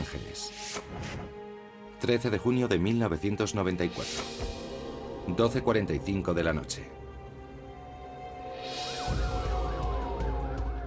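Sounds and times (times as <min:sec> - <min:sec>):
speech: 0:02.0 - 0:04.6, 0:05.3 - 0:07.0
police sirens wailing: 0:08.9 - 0:10.8.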